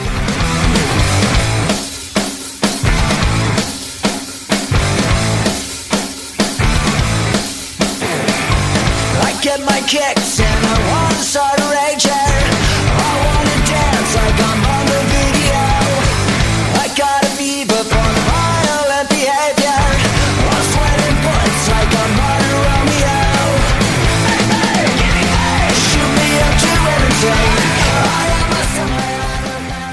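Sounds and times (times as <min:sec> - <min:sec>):
driving distorted guitars: 0:00.0 - 0:29.9
pounding drums: 0:00.0 - 0:29.9
punk rock song: 0:00.0 - 0:29.9.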